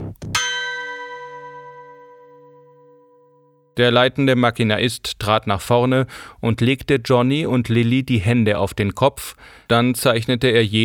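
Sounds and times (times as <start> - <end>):
gong ringing: 0.4 - 3.3
speech: 3.8 - 10.8.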